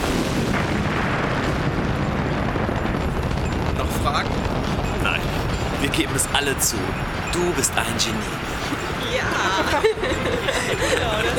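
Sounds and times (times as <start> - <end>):
bomb explosion: 0.0 - 9.0
speech: 6.0 - 11.3
laughter: 8.5 - 11.3.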